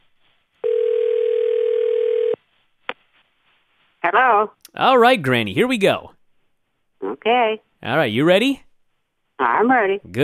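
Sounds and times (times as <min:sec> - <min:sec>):
telephone dial tone while a call is being dialed: 0:00.6 - 0:02.4
speech: 0:04.1 - 0:06.2, 0:07.2 - 0:08.6, 0:09.4 - 0:10.2.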